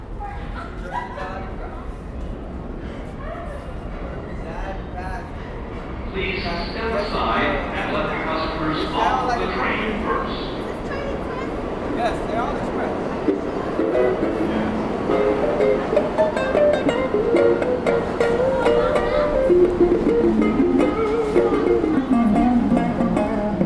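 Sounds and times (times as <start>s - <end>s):
crowd chatter in a busy subway station: 0.0s - 23.6s
guitarist playing plucked notes: 13.3s - 23.6s.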